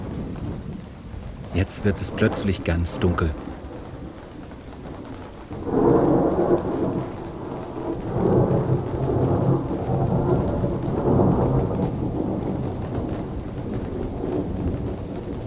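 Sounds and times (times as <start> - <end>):
deep thunder rolling and rumbling: 0.0 - 15.4
heavy rain pouring at a harbour towards the Elbe estuary: 0.0 - 15.4
speech: 1.6 - 3.5.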